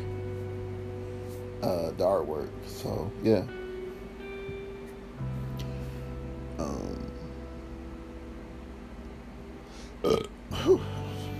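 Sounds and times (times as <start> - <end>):
steady low hum: 0.0 - 11.3
speech: 1.6 - 3.6
person burping after drinking soda: 10.0 - 11.0.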